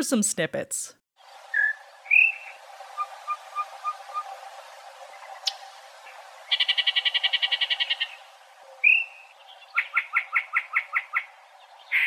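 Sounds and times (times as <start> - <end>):
speech: 0.0 - 1.0
single bird singing whistles and buzzy trills: 1.5 - 4.3, 6.5 - 12.0.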